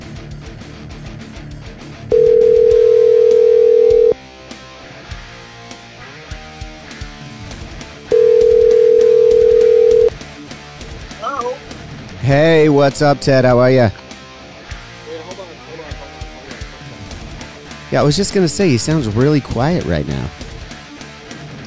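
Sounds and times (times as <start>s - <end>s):
busy music: 0.0s - 21.6s
telephone dial tone when placing a call: 2.1s - 4.2s, 8.1s - 10.1s
speech: 12.3s - 14.0s, 18.0s - 20.4s.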